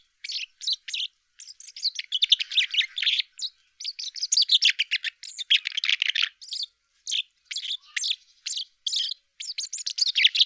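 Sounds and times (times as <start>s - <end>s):
common chaffinch song: 0.0s - 10.4s
other birdsong: 0.0s - 10.4s.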